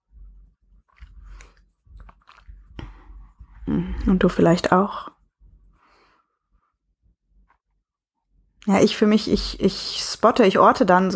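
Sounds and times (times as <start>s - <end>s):
sipping and slurping of coffee: 0.8s - 3.0s
swallowing coffee: 0.9s - 3.8s
speech: 3.7s - 5.2s, 8.7s - 11.1s.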